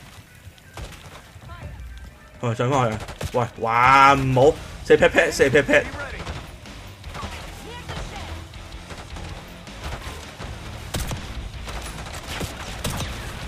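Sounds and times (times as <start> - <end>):
speech: 2.4 - 6.1
video game battle noise: 2.8 - 13.4
machine gun fire from an enemy gunner in a video game: 5.8 - 13.4.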